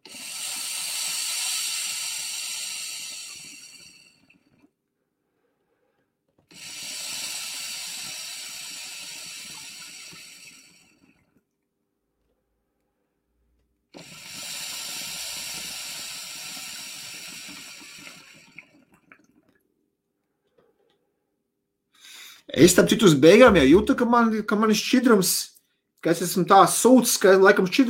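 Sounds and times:
water bubbling and gurgling through an electronic hookah pipe: 0.0s - 4.7s, 6.5s - 11.4s, 13.9s - 19.6s
speech: 22.6s - 27.8s.

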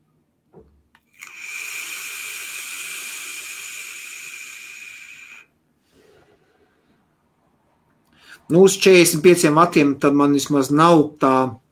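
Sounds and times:
vape device set to 45 watts with 0.3-ohm coil hissing during a long draw: 1.1s - 5.6s
speech: 8.5s - 11.6s.

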